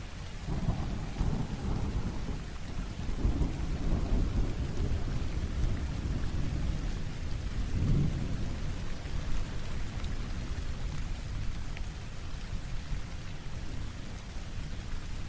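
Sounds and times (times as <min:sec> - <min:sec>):
rain: 0:00.0 - 0:15.2
thunder: 0:00.4 - 0:06.9.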